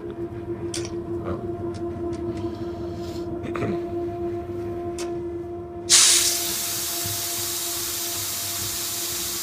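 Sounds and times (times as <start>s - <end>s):
steady low rumble of a standing train: 0.0s - 9.4s
train air brakes hissing with compressed air: 5.9s - 9.4s.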